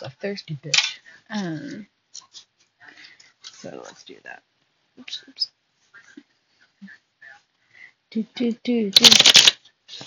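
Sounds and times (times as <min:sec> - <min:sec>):
speech: 0:00.0 - 0:02.5, 0:03.6 - 0:05.6, 0:08.1 - 0:10.0
deck of cards being shuffled: 0:09.0 - 0:10.0.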